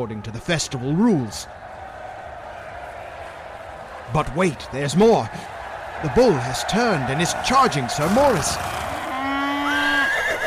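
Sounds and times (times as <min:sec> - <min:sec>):
speech: 0:00.0 - 0:01.6, 0:04.1 - 0:08.9
horse neighing as it rears: 0:08.0 - 0:10.4.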